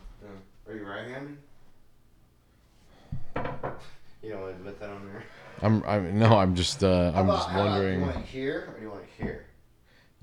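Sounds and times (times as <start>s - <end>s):
speech: 0.2s - 1.5s, 3.8s - 9.4s
slide-out top side desk drawer sliding and being handled: 4.5s - 8.6s.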